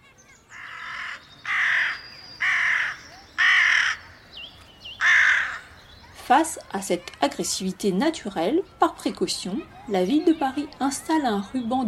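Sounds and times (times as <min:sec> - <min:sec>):
faint high chirps from other birds: 0:00.2 - 0:06.2
crows cawing loudly: 0:00.5 - 0:04.2, 0:05.0 - 0:05.8
speech: 0:06.3 - 0:11.8.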